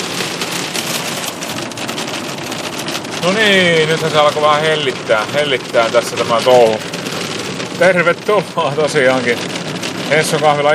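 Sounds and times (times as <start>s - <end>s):
steady rain pouring on a surface in sunshine: 0.0s - 10.7s
speech: 3.2s - 7.0s, 7.8s - 9.5s, 10.1s - 10.7s.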